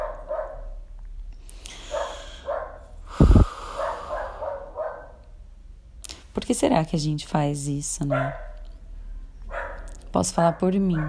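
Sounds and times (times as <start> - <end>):
dog barking: 0.0 - 0.8, 1.9 - 2.8, 3.8 - 5.2, 8.1 - 8.6, 9.5 - 9.9, 10.5 - 11.0
speech: 6.5 - 8.4, 10.2 - 11.0.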